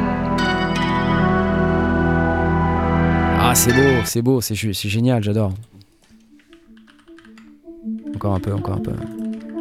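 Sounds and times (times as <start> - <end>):
dirty crunchy PPG-style wavetable synthesizer tone: 0.0 - 4.2
speech: 3.6 - 5.8, 8.2 - 9.2.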